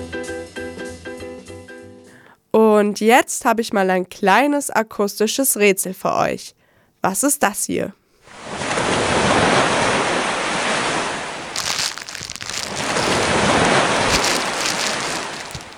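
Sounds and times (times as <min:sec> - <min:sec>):
speech: 0:02.8 - 0:08.6
ocean waves breaking on shore: 0:08.3 - 0:15.7.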